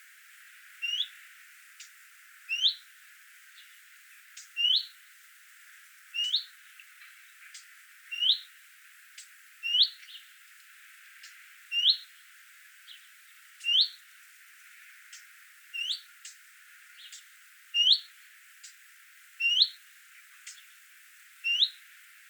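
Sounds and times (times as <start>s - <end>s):
bird chirping in Qatar: 4.4s - 4.9s, 6.2s - 8.5s, 9.6s - 10.3s, 11.2s - 12.1s, 12.9s - 14.0s, 15.8s - 16.4s, 17.0s - 18.8s, 19.4s - 19.8s, 21.4s - 22.2s.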